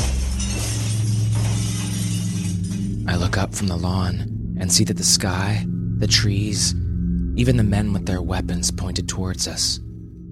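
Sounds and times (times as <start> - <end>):
window glass breaking: 0.0 - 3.4
glass shards and debris clattering: 0.0 - 3.7
steady low rumble: 0.0 - 10.2
speech: 3.3 - 6.8, 7.4 - 9.9.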